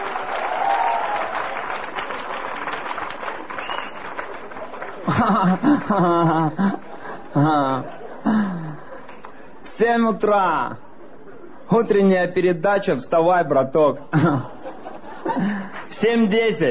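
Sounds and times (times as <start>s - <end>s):
crowd applauding: 0.0s - 9.4s
chuckles: 5.0s - 8.8s
speech: 5.1s - 6.8s, 7.4s - 8.4s, 9.8s - 10.8s, 11.7s - 14.6s, 15.4s - 16.6s.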